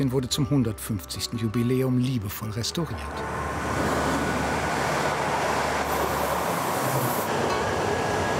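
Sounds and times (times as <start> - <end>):
speech: 0.0 - 3.9
train rattling along Hamburg-Berlin railway tracks in Bergedorf: 3.2 - 8.3
brief higher hiss: 3.4 - 8.3.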